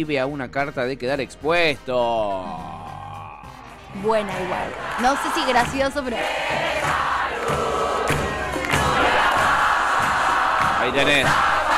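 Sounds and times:
speech: 0:00.0 - 0:02.8, 0:03.9 - 0:07.6, 0:10.8 - 0:11.6
stadium crowd of football supporters chanting: 0:03.8 - 0:11.7.

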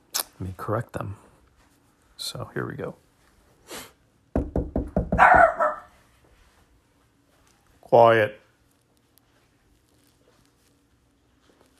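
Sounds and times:
speech: 0:00.4 - 0:01.3, 0:02.2 - 0:03.0, 0:07.9 - 0:08.4
sharp knocks on a door: 0:04.3 - 0:05.6
single loud dog bark: 0:05.1 - 0:06.0.

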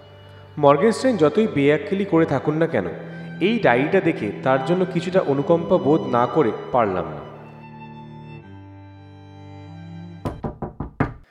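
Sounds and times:
speech: 0:00.6 - 0:07.3
knocking on a room door: 0:10.2 - 0:11.2.

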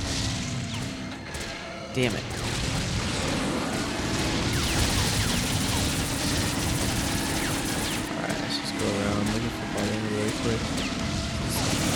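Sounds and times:
missiles and gunfire hitting the player in a video game: 0:00.0 - 0:11.9
speech: 0:02.0 - 0:02.6, 0:10.4 - 0:11.0.

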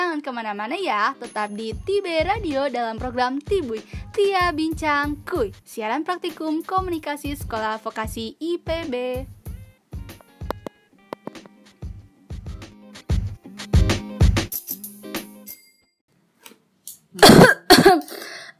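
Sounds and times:
speech: 0:00.2 - 0:09.4
loud harsh coughs: 0:17.2 - 0:18.5.

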